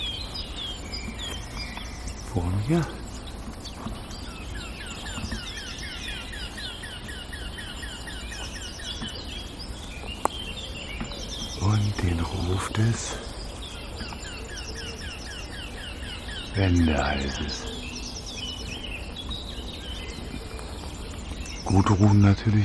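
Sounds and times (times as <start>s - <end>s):
warbler harsh alarm calls: 0.0s - 10.0s, 11.2s - 22.6s
blackcap singing: 0.0s - 22.6s
outdoor noise: 0.0s - 22.6s
low voice: 2.3s - 3.0s, 11.6s - 13.3s, 16.6s - 17.8s, 21.6s - 22.6s
speech: 2.4s - 3.0s, 12.7s - 13.3s, 16.6s - 17.8s, 21.7s - 22.6s.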